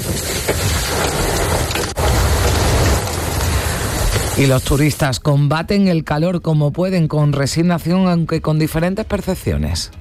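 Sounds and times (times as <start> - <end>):
hail falling hard: 0.0 - 5.0
speech: 4.4 - 9.9.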